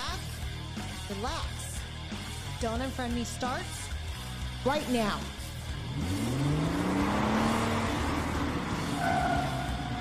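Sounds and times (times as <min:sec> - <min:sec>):
speech: 0:00.8 - 0:03.9, 0:04.6 - 0:05.4, 0:06.0 - 0:06.5
car engine revving: 0:05.3 - 0:09.9.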